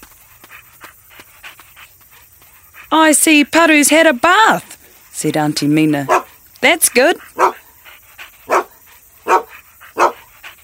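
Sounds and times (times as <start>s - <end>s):
speech: 2.9s - 7.5s
dog barking: 6.1s - 6.3s, 7.3s - 7.7s, 8.5s - 10.3s.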